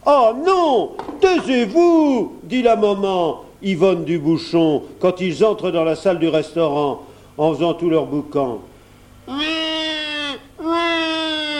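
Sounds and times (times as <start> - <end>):
speech: 0.0 - 8.7
baby in a stroller crying in a restaurant dining room: 9.3 - 11.5.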